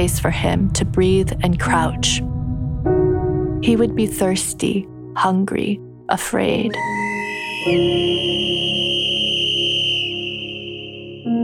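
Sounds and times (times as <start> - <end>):
speech: 0.0 - 2.4, 3.6 - 7.0, 7.6 - 8.6
shrill emergency whistle blowing a long loud steady blast: 6.8 - 11.4.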